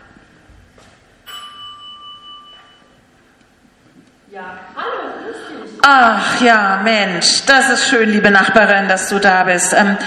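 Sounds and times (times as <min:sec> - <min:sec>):
electronic doorbell chime: 0:01.3 - 0:03.0
speech: 0:04.3 - 0:10.0.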